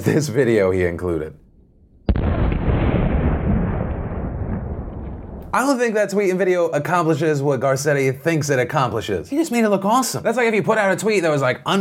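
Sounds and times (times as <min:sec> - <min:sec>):
speech: 0:00.0 - 0:01.4, 0:05.5 - 0:11.8
rough sustained rush of noise and rumble: 0:02.0 - 0:05.6
small firework bang blowing apart a watermelon: 0:02.0 - 0:05.6.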